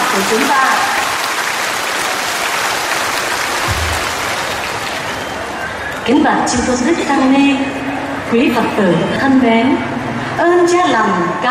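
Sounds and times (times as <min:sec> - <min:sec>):
large audience applause at a Buddhist dharma talk: 0:00.0 - 0:06.1
speech: 0:00.2 - 0:01.0, 0:06.1 - 0:11.4.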